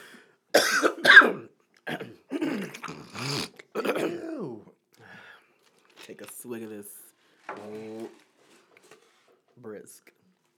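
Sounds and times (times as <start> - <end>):
person coughing: 0.6 - 4.5
throat clearing: 0.6 - 4.6
speech: 6.4 - 7.0, 9.8 - 10.2.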